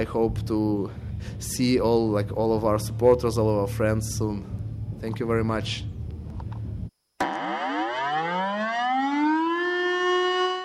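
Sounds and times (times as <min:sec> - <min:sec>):
speech: 0:00.0 - 0:05.9
air raid siren wailing: 0:07.2 - 0:10.6.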